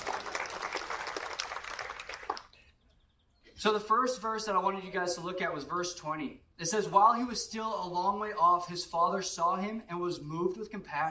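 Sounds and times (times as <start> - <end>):
audience applauding: 0.0 - 2.6
speech: 3.6 - 11.0.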